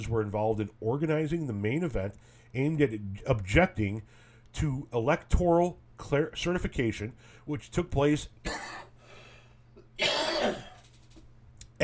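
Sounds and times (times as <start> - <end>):
speech: 0.0 - 8.8
faint steady hum: 0.0 - 11.8
throat clearing cough: 8.4 - 8.9, 10.0 - 10.8.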